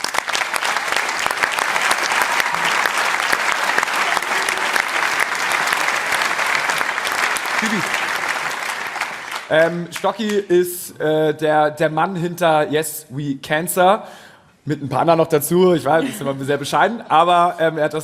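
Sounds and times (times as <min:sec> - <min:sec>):
large audience applauding: 0:00.0 - 0:10.4
speech: 0:09.5 - 0:18.0.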